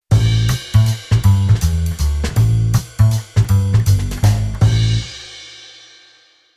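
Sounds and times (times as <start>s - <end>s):
jazz bass arrangement: 0.1s - 5.2s.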